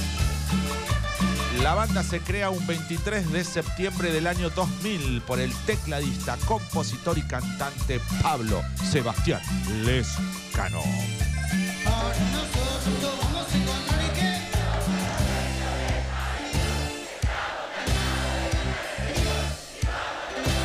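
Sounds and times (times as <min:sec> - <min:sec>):
live band with pounding steady bass: 0:00.0 - 0:20.6
speech: 0:01.6 - 0:13.9
concert crowd singing along: 0:11.8 - 0:20.6.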